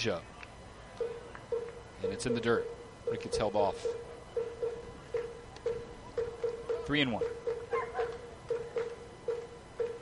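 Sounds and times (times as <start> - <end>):
speech: 0.0 - 0.3, 2.0 - 4.1, 6.9 - 7.4
open-air hum: 0.0 - 10.0
small dogs yapping at a ballpark: 7.7 - 8.3.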